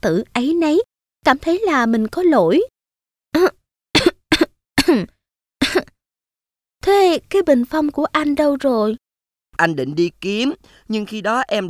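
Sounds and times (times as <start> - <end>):
speech: 0.0 - 2.7, 3.4 - 3.6, 4.9 - 5.9, 6.8 - 9.0, 9.6 - 11.6
woman's feigned dry coughing: 3.4 - 6.0.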